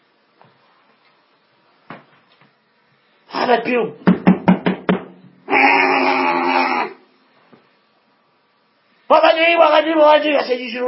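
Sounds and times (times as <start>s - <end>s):
speech: 3.5s - 4.1s, 9.6s - 10.8s
loud sharp bangs on a door: 4.0s - 5.2s
long droning moan-like cry: 5.5s - 7.1s.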